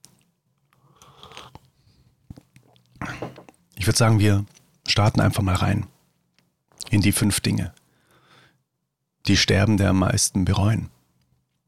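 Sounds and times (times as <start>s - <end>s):
person sipping matcha tea: 0.6s - 3.6s
speech: 3.9s - 5.9s, 6.9s - 7.8s, 9.3s - 11.0s.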